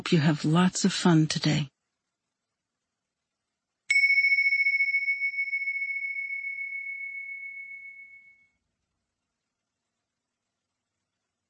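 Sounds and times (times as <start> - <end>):
speech: 0.0 - 1.7
meditation bell struck and ringing: 3.9 - 8.6.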